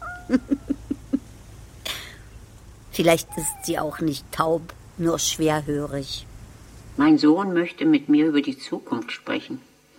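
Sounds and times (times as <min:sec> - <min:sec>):
blind deaf cat calling in a cemetery in Punta Arenas: 0:00.0 - 0:00.9, 0:03.1 - 0:04.0
speech: 0:00.3 - 0:00.7, 0:03.0 - 0:06.3, 0:07.0 - 0:09.7.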